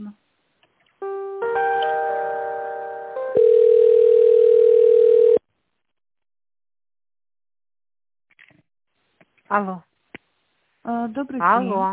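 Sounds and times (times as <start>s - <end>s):
telephone line tones during an office call being transferred: 3.3s - 5.4s
speech: 9.5s - 9.9s, 11.0s - 11.9s.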